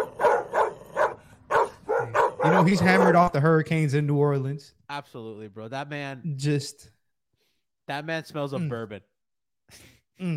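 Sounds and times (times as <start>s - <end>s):
man barking like a dog: 0.0s - 3.5s
speech: 2.4s - 7.0s, 7.9s - 9.1s, 9.7s - 10.3s.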